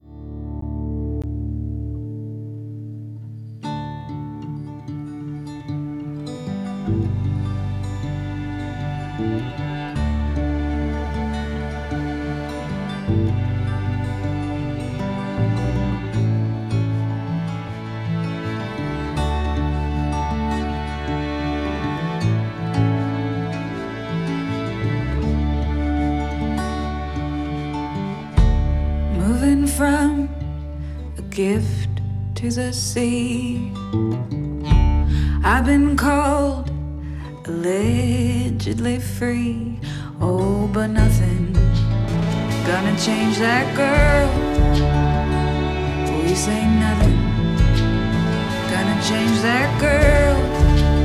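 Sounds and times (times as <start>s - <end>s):
riff: 0.0s - 39.2s, 39.8s - 51.0s.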